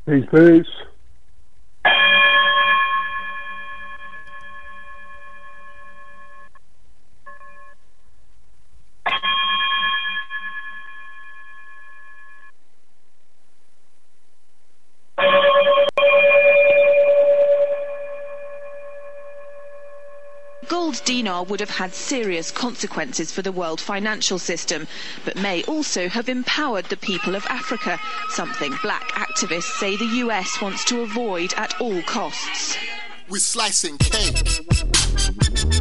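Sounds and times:
speech: 0.1 - 0.9, 21.4 - 34.9
bell-like chime ringing as a sign-off: 1.9 - 6.5, 9.1 - 12.5, 15.2 - 21.3.

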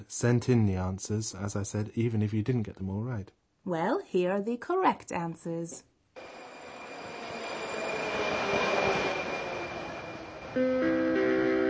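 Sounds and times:
speech: 0.0 - 6.3, 10.6 - 11.0
louder buzzy harmonic whine: 6.2 - 11.6
underground train rumbling: 6.2 - 11.6.

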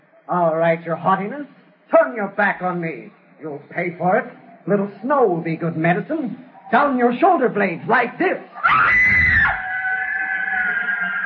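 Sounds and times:
speech: 0.3 - 9.1
woman screaming with rage: 8.6 - 11.2.

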